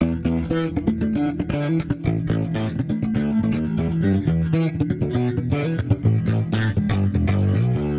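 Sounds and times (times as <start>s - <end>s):
funk loop with warped bass: 0.0s - 7.9s.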